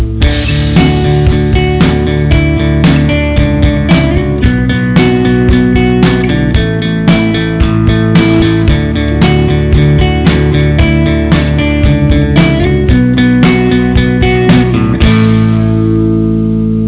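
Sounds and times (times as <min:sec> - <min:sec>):
music loop: 0:00.0 - 0:16.8.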